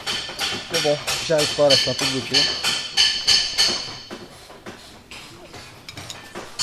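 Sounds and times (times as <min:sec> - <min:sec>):
hammer striking brake drum being removed to check brake linings: 0:00.0 - 0:06.6
speech: 0:00.8 - 0:02.7.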